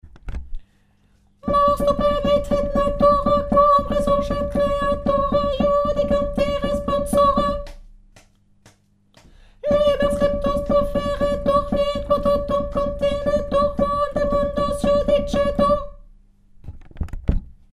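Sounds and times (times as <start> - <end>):
chant melody in high F: 1.4 - 7.8, 9.6 - 16.0.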